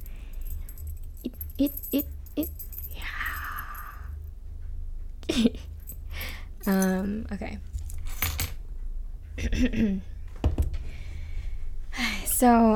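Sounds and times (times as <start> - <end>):
keys jangling as they are played with: 0.0 - 4.3, 5.6 - 8.6
low steady hum: 0.0 - 12.7
speech: 1.6 - 2.6, 5.4 - 5.7, 6.6 - 7.7, 9.4 - 10.1, 12.4 - 12.7.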